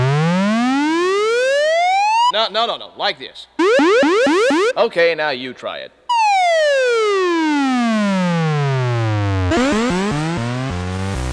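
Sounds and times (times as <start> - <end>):
Moog synthesizer modulating tones: 0.0 - 2.3, 3.6 - 4.8, 6.1 - 11.2
speech: 2.4 - 6.0.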